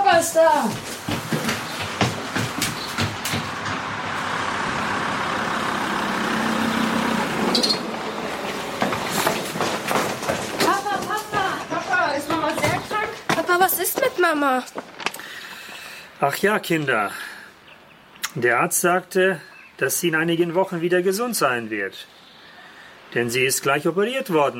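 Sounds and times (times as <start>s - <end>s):
speech: 0.2s - 1.2s, 14.3s - 14.8s, 16.2s - 17.2s, 18.3s - 22.2s, 23.1s - 24.5s
car tire noise: 0.8s - 13.6s
car driving into a yard with engine rumble: 3.0s - 10.6s.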